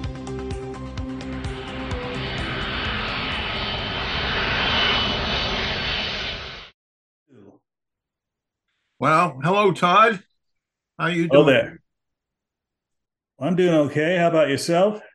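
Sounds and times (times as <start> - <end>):
airplane engine roaring during takeoff: 0.1 - 6.8
speech: 9.0 - 10.3, 11.0 - 11.8, 13.4 - 15.1.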